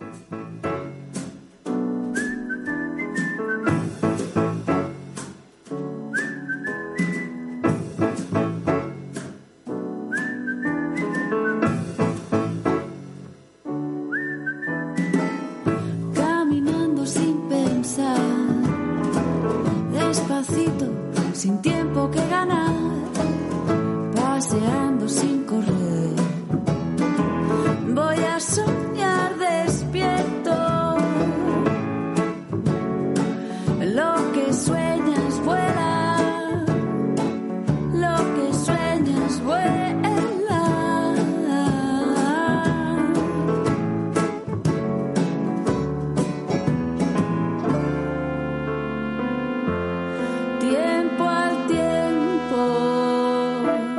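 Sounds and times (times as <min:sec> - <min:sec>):
music with light start-stop accompaniment and fuller instrumentation: 0:00.0 - 0:53.9
whistled melody: 0:02.1 - 0:04.1, 0:06.0 - 0:07.7, 0:10.0 - 0:12.0, 0:14.0 - 0:15.6.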